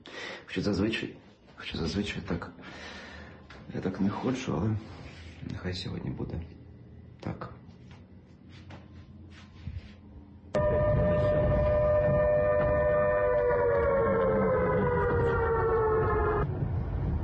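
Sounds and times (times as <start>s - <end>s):
speech: 0.5s - 3.0s, 3.7s - 6.6s
air raid warning siren wailing: 10.5s - 17.2s.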